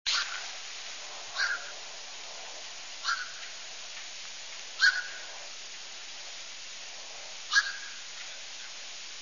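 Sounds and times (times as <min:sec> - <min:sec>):
cormorant calls: 0:01.4 - 0:01.8, 0:03.0 - 0:03.4, 0:04.8 - 0:05.4, 0:07.5 - 0:08.0.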